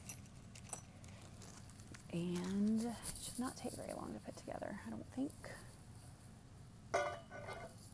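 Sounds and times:
small metal washers and bolts poured into a small plastic bag: 0.0s - 3.2s
speech: 2.1s - 5.8s.

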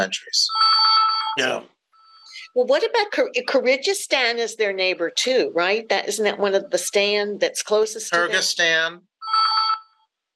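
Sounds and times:
speech: 0.0s - 0.6s, 1.4s - 1.8s, 2.5s - 9.1s
telephone bell ringing: 0.5s - 1.4s, 9.2s - 10.1s.

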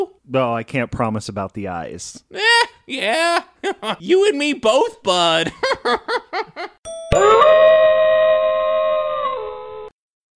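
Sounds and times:
speech: 0.3s - 7.7s
laughter: 3.0s - 4.0s, 5.4s - 6.8s
doorbell chime: 6.9s - 7.6s
wolf howling: 7.2s - 9.9s.

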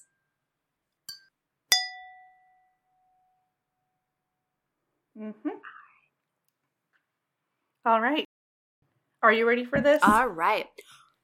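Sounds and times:
drink glasses clinking in a toast: 1.1s - 2.5s
speech: 5.2s - 5.7s, 7.8s - 8.3s, 9.2s - 11.0s.

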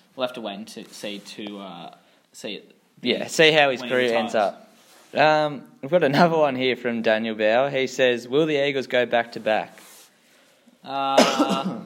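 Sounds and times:
speech: 0.2s - 9.9s, 10.8s - 11.8s
person coughing harshly: 11.1s - 11.8s.

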